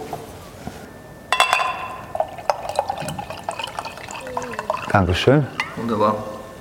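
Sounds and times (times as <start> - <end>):
glass clink: 1.3 - 6.0
sparkling water pouring into a glass: 1.4 - 6.0
speech: 5.0 - 6.3.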